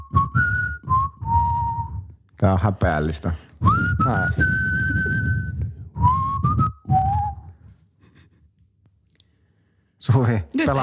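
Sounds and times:
person whistling a tune: 0:00.0 - 0:02.2, 0:03.6 - 0:07.7
speech: 0:02.4 - 0:05.0, 0:10.2 - 0:10.8.

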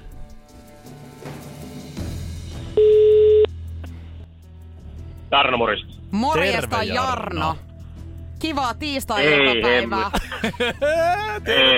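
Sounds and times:
music: 0:00.0 - 0:11.7
telephone ringback tone: 0:02.8 - 0:03.5
speech: 0:05.3 - 0:07.6, 0:08.4 - 0:11.7
laughter: 0:09.7 - 0:11.7.

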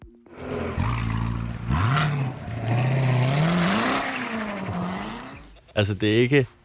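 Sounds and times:
Corvette sports car engine revving: 0:00.3 - 0:05.6
speech: 0:05.8 - 0:06.6.

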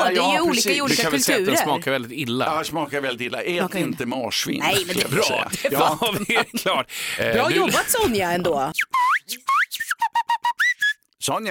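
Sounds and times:
speech: 0:00.1 - 0:09.4, 0:11.2 - 0:11.5
laughter: 0:04.6 - 0:08.3
person whistling a lively phrase: 0:08.8 - 0:11.1.

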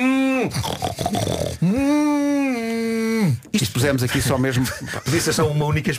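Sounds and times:
speech: 0:00.0 - 0:05.9
pigs grunting in the countryside: 0:00.5 - 0:01.8.

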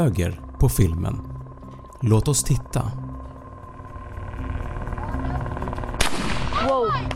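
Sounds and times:
speech: 0:00.0 - 0:01.3, 0:02.0 - 0:03.1
steady low rumble of outdoor noise: 0:00.2 - 0:07.1
rifle shot during target shooting practice: 0:06.0 - 0:06.8.

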